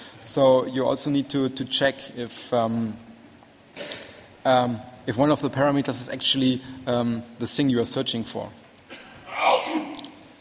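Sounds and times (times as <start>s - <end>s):
speech: 0.4s - 3.1s, 4.4s - 8.6s
human sneeze: 8.9s - 10.1s.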